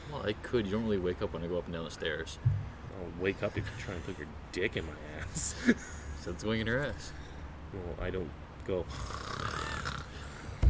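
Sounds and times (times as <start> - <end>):
speech: 0.1 - 9.7
person imitating snoring with the mouth closed: 8.9 - 10.6.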